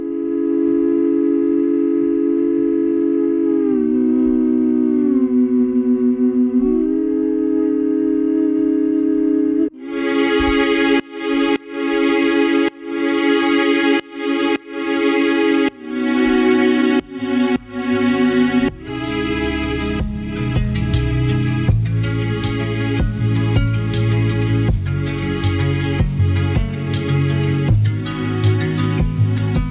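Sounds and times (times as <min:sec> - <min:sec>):
sustained strings side-chained to kick drum: 0:00.0 - 0:29.6
kick drum: 0:20.0 - 0:20.9, 0:21.7 - 0:22.0, 0:23.0 - 0:23.8, 0:24.7 - 0:24.9, 0:26.0 - 0:26.8, 0:27.7 - 0:28.0, 0:29.0 - 0:29.6.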